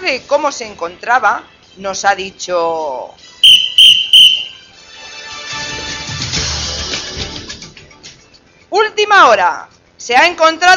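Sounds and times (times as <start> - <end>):
speech: 0.1 - 3.3, 8.9 - 10.7
shrill whistle blasts: 3.4 - 4.7.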